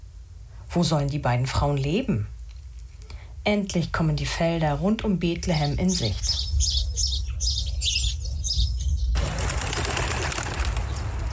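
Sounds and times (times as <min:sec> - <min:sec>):
speech: 0:00.7 - 0:02.4, 0:03.4 - 0:06.9
busy flock of birds chirping: 0:05.3 - 0:11.3
many wings flapping: 0:09.1 - 0:11.3.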